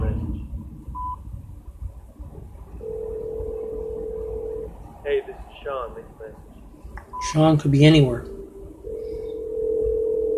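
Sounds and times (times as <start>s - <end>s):
electronic phone ringback tone of an outgoing call: 2.8s - 4.7s, 8.8s - 10.3s
speech: 7.3s - 8.3s.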